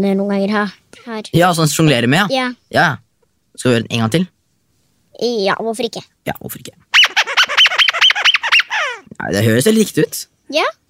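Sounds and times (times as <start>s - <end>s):
speech: 0.0s - 3.0s, 3.6s - 4.4s, 5.2s - 6.9s, 9.2s - 10.8s
rubber chicken squeaky toy squeezed: 7.0s - 9.1s.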